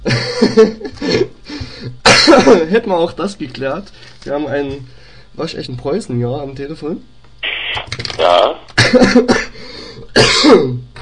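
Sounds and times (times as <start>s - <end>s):
speech: 0.4s - 1.2s, 2.3s - 9.5s, 10.2s - 10.9s
person coughing harshly: 2.1s - 2.6s, 8.8s - 9.6s, 10.2s - 10.8s.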